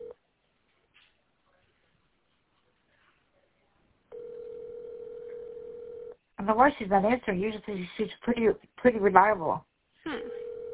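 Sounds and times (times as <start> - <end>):
telephone dial tone: 4.1 - 6.2, 10.4 - 10.7
speech: 6.4 - 9.7.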